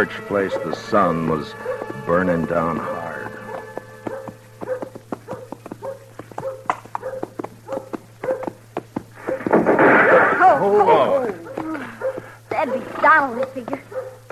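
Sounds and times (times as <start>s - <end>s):
speech: 0.0s - 3.0s, 13.2s - 13.8s
horse hooves clip-clopping: 0.0s - 9.9s, 10.7s - 14.2s
low constant hum: 0.0s - 14.2s
rush of broadband noise: 8.4s - 11.6s.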